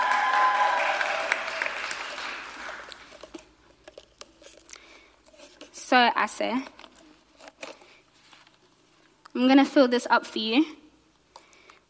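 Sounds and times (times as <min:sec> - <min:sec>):
audience applause: 0:00.0 - 0:03.0
speech: 0:05.9 - 0:06.8, 0:09.4 - 0:10.8.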